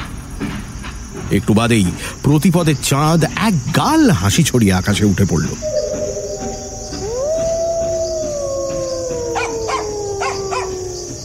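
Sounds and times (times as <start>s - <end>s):
crickets chirring: 0.0s - 11.2s
speech: 1.3s - 5.8s
local village dogs barking: 5.6s - 11.2s
pack of jackals howling near a village in the evening: 5.6s - 11.2s.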